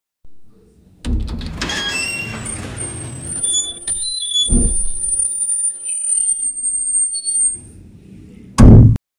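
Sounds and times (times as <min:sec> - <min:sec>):
gate opening: 0:01.0 - 0:07.7.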